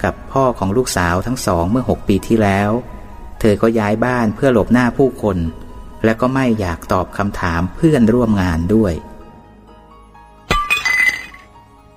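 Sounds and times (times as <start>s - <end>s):
speech: 0.0s - 9.1s
clinking, rattling crockery shards: 10.5s - 11.5s
plate shattering while dishes are washed: 10.5s - 11.5s.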